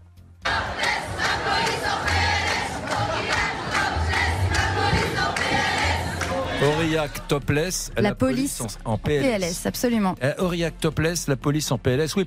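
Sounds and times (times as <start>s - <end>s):
crowd of protesters chanting a rhythmic slogan in unison in Aurillac: 0.4s - 7.4s
speech: 6.6s - 12.2s.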